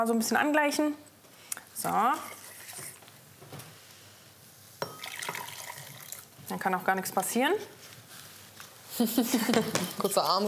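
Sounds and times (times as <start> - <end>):
speech: 0.0 - 1.1, 1.8 - 2.4, 6.5 - 7.8, 9.0 - 10.4
hot liquid pouring into a bowl of starch mixture: 2.2 - 3.0, 4.8 - 6.4.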